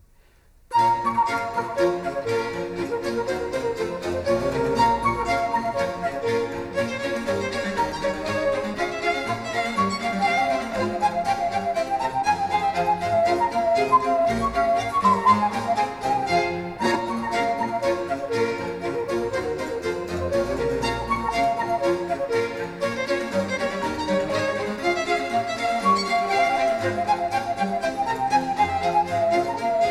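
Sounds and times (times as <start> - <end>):
orchestral suite: 0.7 - 29.8.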